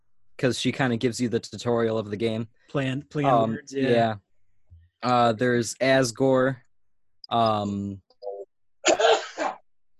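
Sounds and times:
speech: 0:00.4 - 0:04.2, 0:05.0 - 0:06.6, 0:07.3 - 0:08.0
man sneezing: 0:08.9 - 0:09.6.

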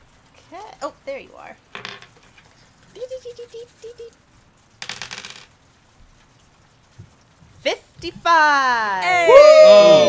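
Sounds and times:
speech: 0:00.8 - 0:02.0, 0:03.0 - 0:04.3, 0:07.6 - 0:10.0
D100 dice clattering and rattling across a surface: 0:01.8 - 0:02.2, 0:04.8 - 0:05.6
person humming a playful sing-song tune: 0:02.9 - 0:04.2.

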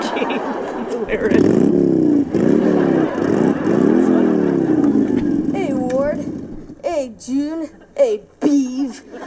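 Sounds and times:
laughter: 0:00.0 - 0:01.6, 0:02.2 - 0:05.6, 0:08.8 - 0:09.2
speech: 0:00.3 - 0:01.8
motorcycle revving inside a house bedroom: 0:01.0 - 0:07.5.

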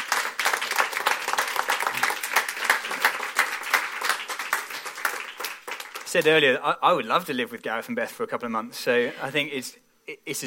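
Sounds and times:
audience applause: 0:00.0 - 0:06.2
speech: 0:06.1 - 0:10.4.

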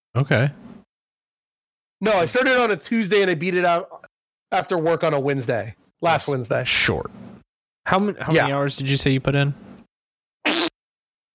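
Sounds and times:
speech: 0:00.2 - 0:00.6, 0:02.0 - 0:09.7
raspberry blown with the lips: 0:10.4 - 0:10.8.

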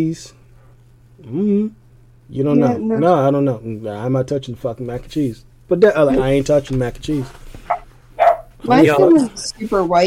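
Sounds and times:
speech: 0:00.0 - 0:00.4, 0:01.2 - 0:07.5, 0:08.6 - 0:10.0
faint steady hum: 0:00.0 - 0:10.0
high-pitched puppy barks: 0:07.7 - 0:08.5.

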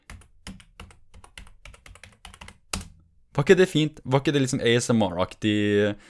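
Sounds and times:
typing a Google search on a computer keyboard: 0:00.0 - 0:03.0
speech: 0:03.4 - 0:06.0.

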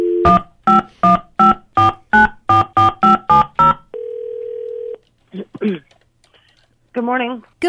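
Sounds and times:
steady telephone ring tone: 0:00.0 - 0:05.0
touch-tone keypad beeps dialing a number: 0:00.2 - 0:03.8
speech: 0:07.0 - 0:07.6.

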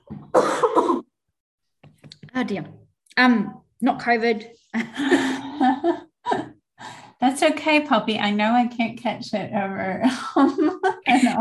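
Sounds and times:
person coughing: 0:00.3 - 0:01.1
speech: 0:02.4 - 0:06.0, 0:07.4 - 0:11.3
laughter: 0:04.8 - 0:06.5, 0:10.0 - 0:11.3.

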